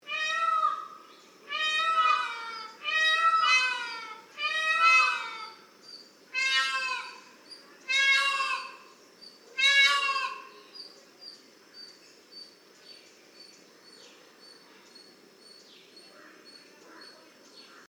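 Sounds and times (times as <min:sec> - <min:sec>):
peafowl giving loud wailing harmonic calls: 0:00.1 - 0:05.7, 0:06.3 - 0:08.9, 0:09.5 - 0:10.7.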